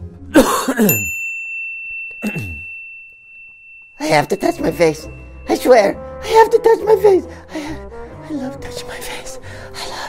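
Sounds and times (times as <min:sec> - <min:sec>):
harsh coughs: 0:00.3 - 0:01.1, 0:02.2 - 0:02.7
speech: 0:00.3 - 0:01.2, 0:02.2 - 0:02.6, 0:04.0 - 0:09.5.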